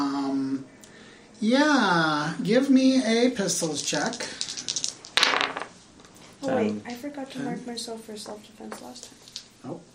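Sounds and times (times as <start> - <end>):
speech: 1.4 - 4.6, 6.4 - 9.9
six-sided dice rolling on a hard tabletop: 3.6 - 5.8.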